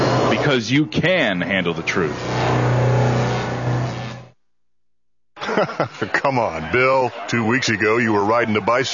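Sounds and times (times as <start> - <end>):
speech: 0.5 - 2.6, 5.6 - 8.9
new car engine revving loudly: 1.7 - 4.4
laughter: 5.4 - 8.9.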